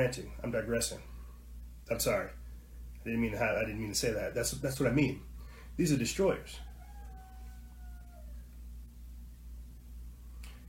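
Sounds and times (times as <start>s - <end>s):
speech: 0.0s - 1.1s, 1.9s - 2.4s, 3.0s - 6.7s
low hum: 0.0s - 10.6s
chicken calling outside: 6.4s - 8.9s.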